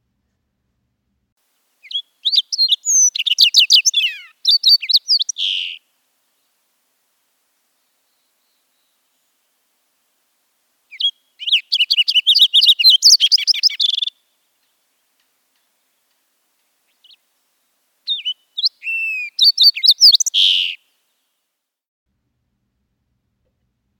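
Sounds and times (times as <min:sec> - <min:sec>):
thick-billed fox sparrow singing: 0:01.8 - 0:05.8, 0:10.9 - 0:20.8.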